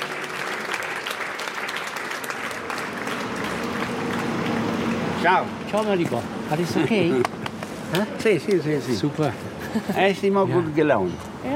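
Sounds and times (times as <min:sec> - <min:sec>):
large audience applauding after a concert: 0:00.0 - 0:05.4
speech: 0:05.2 - 0:11.5.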